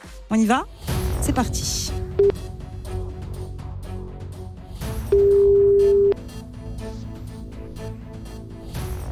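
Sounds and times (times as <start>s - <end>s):
speech: 0.3s - 2.3s
ringback tone on an outgoing phone call: 5.1s - 6.2s.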